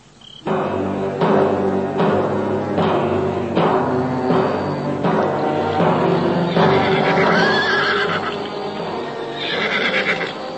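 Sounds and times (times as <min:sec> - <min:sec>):
horse hooves clopping: 0:00.1 - 0:10.5
horse neighing: 0:06.5 - 0:08.6, 0:09.3 - 0:10.4.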